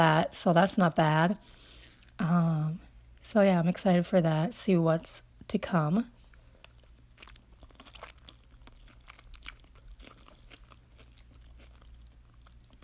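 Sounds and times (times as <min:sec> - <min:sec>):
speech: 0:00.0 - 0:01.6, 0:02.2 - 0:06.2
low steady hum: 0:00.0 - 0:12.8
person crunching onions or zucchini noodles: 0:01.4 - 0:02.2, 0:06.5 - 0:12.8.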